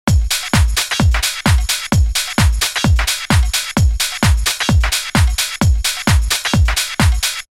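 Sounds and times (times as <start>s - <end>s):
music loop with Renaissance EQ: 0.0s - 7.5s.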